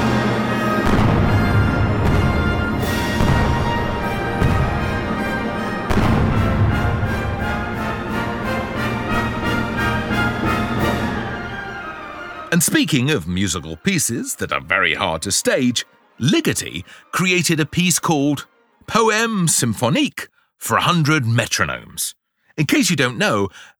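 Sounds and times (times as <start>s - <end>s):
full orchestra playing an overture: 0.0s - 19.3s
heavy booming cannon blasts: 0.7s - 7.9s
speech: 12.6s - 23.7s.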